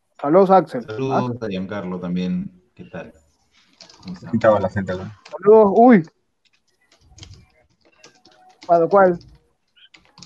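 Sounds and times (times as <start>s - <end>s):
speech: 0.2s - 3.2s, 4.0s - 6.2s, 8.7s - 9.3s
fast typing on a computer keyboard: 3.6s - 4.1s, 6.4s - 10.2s.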